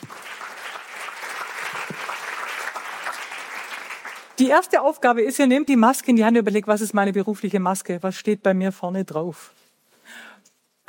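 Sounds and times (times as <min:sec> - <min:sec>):
audience applause: 0:00.0 - 0:04.4
speech: 0:04.4 - 0:09.6.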